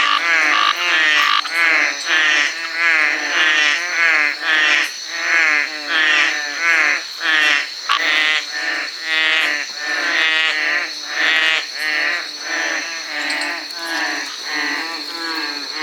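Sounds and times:
veined tree frog Trachycephalus typhonius giving harsh buzzy pulsed croaks: 0:00.0 - 0:15.8.

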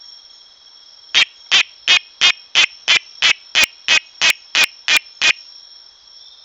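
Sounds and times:
Oreophryne aurora frog calling: 0:01.2 - 0:05.5.

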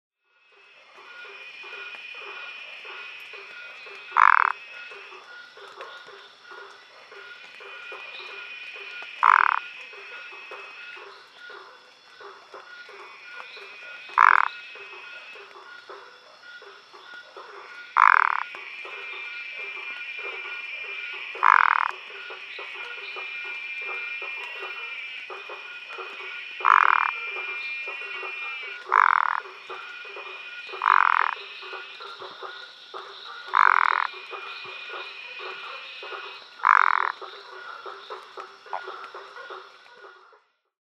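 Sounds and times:
Phyllomedusa burmeisteri calling: 0:00.6 - 0:40.5.

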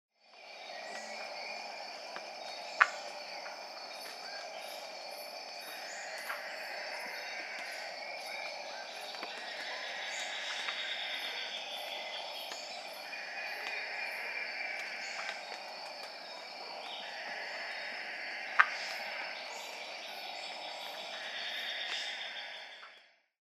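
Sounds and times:
Haddadus binotatus frog: 0:00.3 - 0:23.3.

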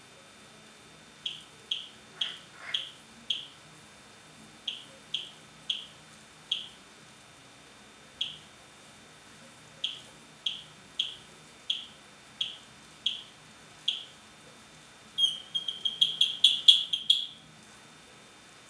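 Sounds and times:
Pseudophilautus zorro frog calling: 0:01.2 - 0:03.6, 0:04.7 - 0:06.8, 0:08.2 - 0:08.4, 0:09.8 - 0:13.3, 0:13.9 - 0:14.1, 0:15.2 - 0:17.4.

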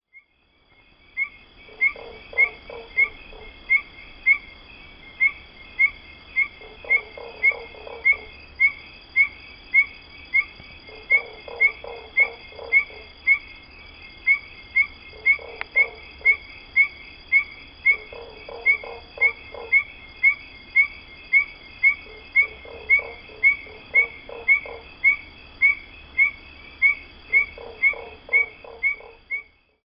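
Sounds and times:
Aplastodiscus perviridis: 0:00.1 - 0:29.8.

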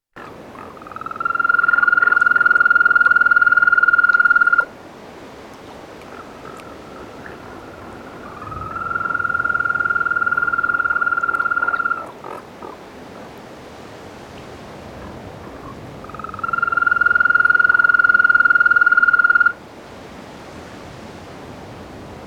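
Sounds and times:
Bufotes boulengeri calling: 0:00.2 - 0:04.8, 0:06.0 - 0:12.8, 0:15.0 - 0:19.6.

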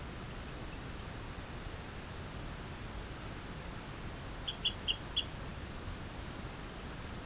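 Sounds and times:
steady hiss: 0:00.0 - 0:07.2
Rio Grande chirping frog Eleutherodactylus cystignathoides chirping: 0:04.4 - 0:05.3.

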